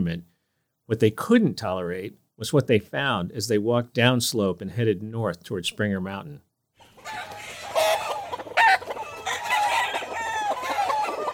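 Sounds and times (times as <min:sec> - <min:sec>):
speech: 0:00.0 - 0:00.3, 0:00.9 - 0:06.5
flock of chickens clucking and squawking on a chicken farm in Georgia in summer: 0:06.8 - 0:11.3.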